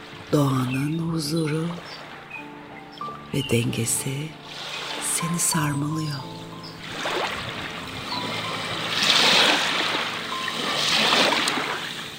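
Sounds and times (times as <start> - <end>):
sea waves: 0.0 - 12.1
speech: 0.3 - 2.0, 3.3 - 7.1.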